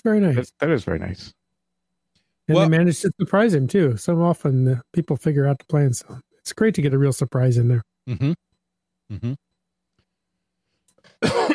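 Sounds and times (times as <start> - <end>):
speech: 0.0 - 1.4, 2.5 - 8.5, 9.1 - 9.4, 11.2 - 11.5
faint breathy rasps: 8.1 - 8.4, 9.1 - 9.4
harsh cough with throat clearing: 11.1 - 11.5.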